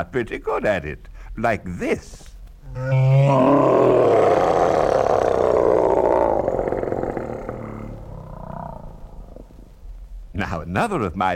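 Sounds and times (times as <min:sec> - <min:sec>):
speech: 0:00.0 - 0:04.5, 0:10.5 - 0:11.3
human voice performing a creature roar: 0:02.7 - 0:09.5.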